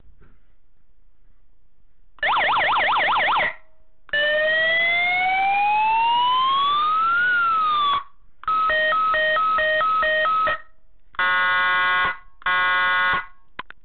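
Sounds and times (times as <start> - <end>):
12V four-tone warning siren with control unit: 2.2 - 13.4.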